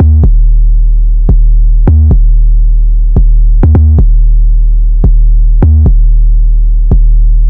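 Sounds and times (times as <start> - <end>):
808 bass drum boom in D minor: 0.0 - 7.4.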